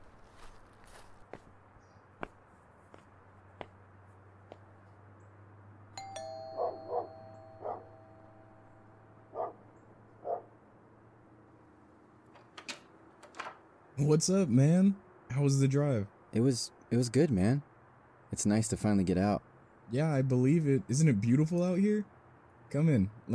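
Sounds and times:
footsteps: 0:00.0 - 0:05.0
doorbell ringing: 0:06.0 - 0:09.3
dog barks inside: 0:09.3 - 0:09.6, 0:10.2 - 0:10.5
speech: 0:14.0 - 0:17.7, 0:18.3 - 0:22.1, 0:22.7 - 0:23.3.

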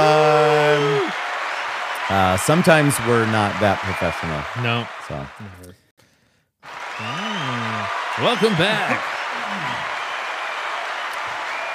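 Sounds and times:
audience applause: 0:00.0 - 0:05.6, 0:06.6 - 0:11.7
speech: 0:02.4 - 0:05.8, 0:08.2 - 0:09.7.

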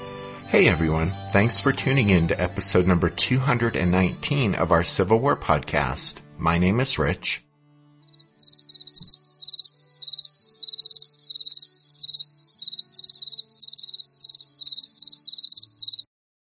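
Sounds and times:
speech: 0:00.5 - 0:07.5
crickets chirping: 0:08.1 - 0:16.1.

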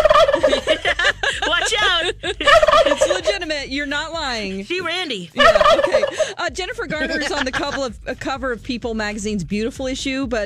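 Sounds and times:
turkey gobbling: 0:00.0 - 0:00.8, 0:02.4 - 0:03.3, 0:05.4 - 0:06.4
laughter: 0:00.0 - 0:03.6, 0:05.4 - 0:07.9
speech: 0:03.4 - 0:10.4.

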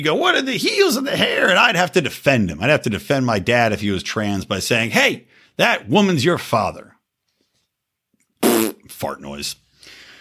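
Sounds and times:
speech: 0:00.0 - 0:07.0, 0:08.6 - 0:10.0
buzzy fart noise made with the mouth: 0:08.4 - 0:08.9.

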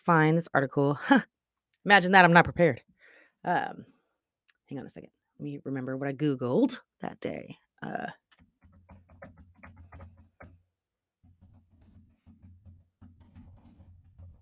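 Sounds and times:
speech: 0:00.0 - 0:03.9, 0:04.7 - 0:08.2
typing on a computer keyboard: 0:08.4 - 0:10.5.

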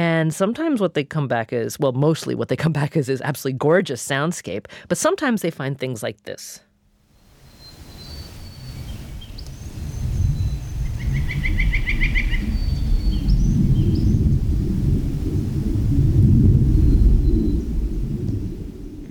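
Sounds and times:
speech: 0:00.0 - 0:06.7
birdsong at a mountain lake: 0:07.4 - 0:14.3, 0:16.8 - 0:17.7
rapid bird trill: 0:07.5 - 0:14.1
steady wind-like low rumble from aircraft in the sky: 0:08.6 - 0:19.0.

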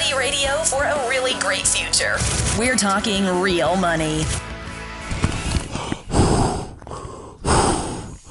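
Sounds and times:
speech: 0:00.1 - 0:04.5
heavy breathing into a bag: 0:05.1 - 0:08.2.

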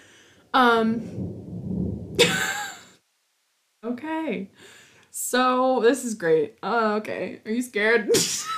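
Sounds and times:
speech: 0:00.5 - 0:01.3, 0:02.2 - 0:02.5, 0:04.0 - 0:08.5
low rolling rumble of thunder: 0:00.8 - 0:02.8.

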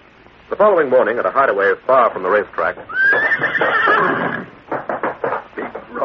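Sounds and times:
speech: 0:00.5 - 0:04.3
horse neighing: 0:02.8 - 0:04.6.

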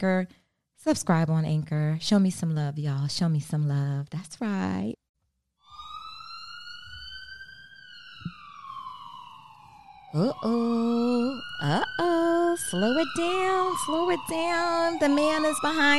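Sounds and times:
speech: 0:00.0 - 0:05.0, 0:10.1 - 0:15.9
police car siren: 0:05.6 - 0:15.9.

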